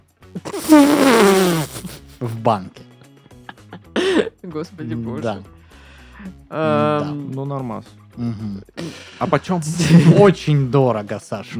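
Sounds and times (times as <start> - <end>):
drawn-out buzzy fart sound: 0.3 - 2.1
speech: 0.4 - 2.8, 4.5 - 5.6, 6.2 - 11.5
laughter: 3.0 - 4.3, 8.9 - 10.5.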